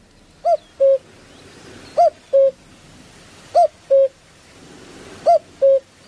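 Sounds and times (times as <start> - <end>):
cuckoo calling: 0.4 - 2.6, 3.5 - 4.2, 5.2 - 6.0.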